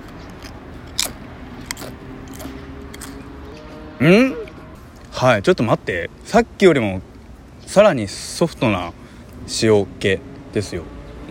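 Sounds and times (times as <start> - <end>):
crunchy lightly salted potato chips being eaten during a chip tasting: 0.0 - 3.4
speech: 4.0 - 4.4, 5.2 - 7.1, 7.7 - 11.2.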